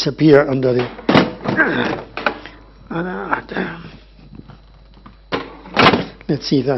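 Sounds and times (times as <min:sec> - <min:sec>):
speech: 0:00.0 - 0:01.0, 0:01.6 - 0:02.1, 0:02.9 - 0:03.8, 0:06.3 - 0:06.7
small chair stacked onto another chair: 0:00.6 - 0:02.5, 0:04.3 - 0:06.2.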